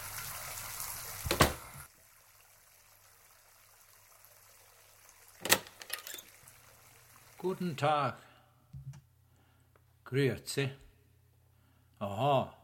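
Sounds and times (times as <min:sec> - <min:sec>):
water running from a tap: 0:00.0 - 0:07.8
speech: 0:07.4 - 0:08.3, 0:10.1 - 0:10.8, 0:12.0 - 0:12.6.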